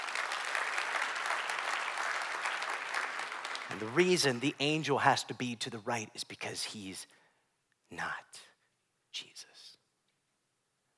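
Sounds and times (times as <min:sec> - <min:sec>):
crowd applauding: 0:00.0 - 0:04.6
speech: 0:03.7 - 0:07.2, 0:07.9 - 0:08.5, 0:09.2 - 0:09.5.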